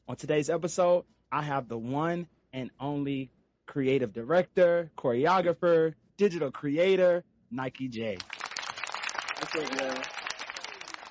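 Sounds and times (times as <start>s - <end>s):
speech: 0.1s - 8.3s, 9.4s - 10.2s
crowd applauding: 8.2s - 11.0s.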